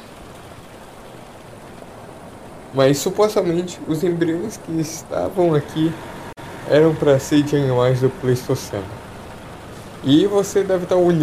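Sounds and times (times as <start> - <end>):
rain pouring onto surfaces: 0.0 - 11.2
speech: 2.7 - 9.0, 10.0 - 11.2.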